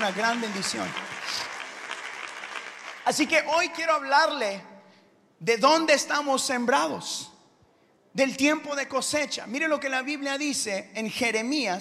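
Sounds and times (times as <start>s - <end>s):
speech: 0.0s - 1.5s, 3.1s - 4.7s, 5.4s - 7.3s, 8.2s - 11.7s
crowd clapping: 0.0s - 3.7s.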